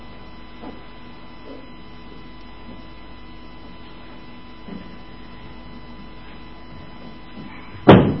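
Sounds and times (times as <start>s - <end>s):
low hum: 0.0s - 8.1s
kitchen door shutting with a thud: 7.8s - 8.1s.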